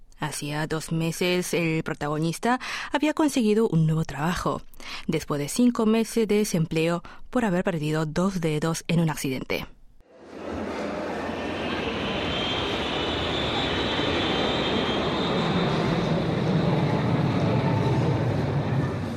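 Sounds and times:
speech: 0.3s - 9.8s
airplane engine roar of a plane landing at an international airport: 10.1s - 19.1s.

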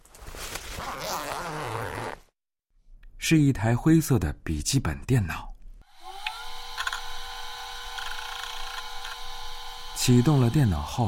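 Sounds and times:
zipper pulled open on a black bag on a table: 0.6s - 2.4s
speech: 3.3s - 5.5s, 10.0s - 11.0s.

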